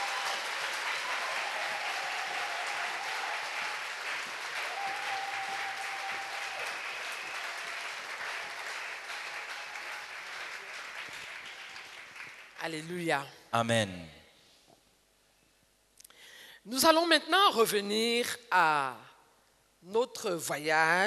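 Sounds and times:
audience clapping together at a church worship gathering: 0.0 - 13.0
speech: 12.7 - 14.2, 16.7 - 19.0, 19.8 - 21.0.

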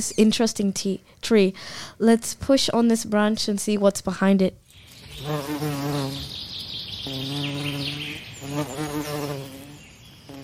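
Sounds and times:
speech: 0.0 - 4.6, 5.2 - 6.4, 7.0 - 9.6
swarm of mosquitoes buzzing in a rainforest: 4.9 - 10.4.

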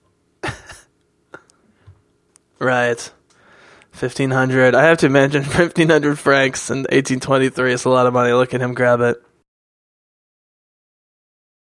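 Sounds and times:
harsh coughing: 0.4 - 1.5
speech: 2.6 - 3.2, 4.0 - 9.3.

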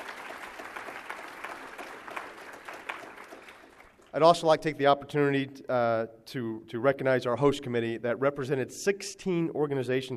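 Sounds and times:
audience applause: 0.0 - 4.1
speech: 4.1 - 10.1.

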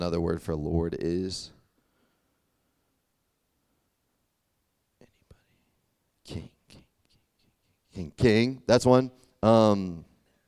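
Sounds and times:
speech: 0.0 - 1.6, 6.3 - 6.5, 8.0 - 10.1
audience member whispering an answer: 5.0 - 8.2.

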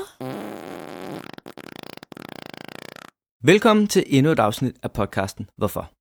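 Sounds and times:
long wet fart: 0.1 - 3.2
speech: 3.4 - 5.9.

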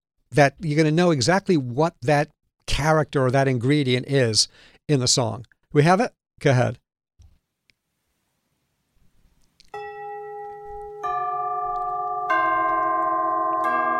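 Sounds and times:
speech: 0.3 - 6.8
tubular bells being struck: 9.8 - 13.9.

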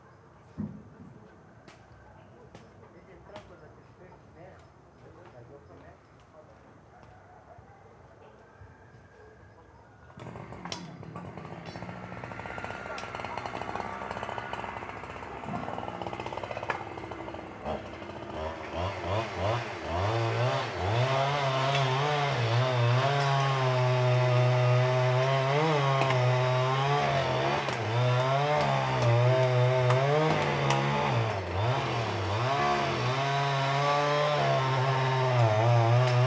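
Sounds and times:
scattered knocks in quiet woods: 0.6 - 1.2
chainsaw felling pines in a forest reserve: 10.2 - 36.2.

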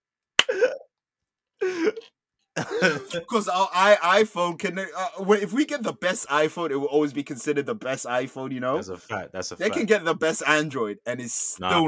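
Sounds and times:
person hiccuping: 0.4 - 0.9, 1.6 - 3.2
speech: 1.6 - 11.8
laughter: 2.6 - 6.3.

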